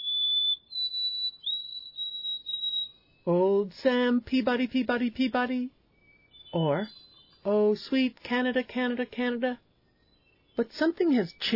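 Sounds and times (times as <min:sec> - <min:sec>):
white-throated sparrow whistled song: 0:00.0 - 0:03.5, 0:05.9 - 0:07.5, 0:09.6 - 0:11.5
speech: 0:03.2 - 0:05.8, 0:06.5 - 0:09.6, 0:10.6 - 0:11.5.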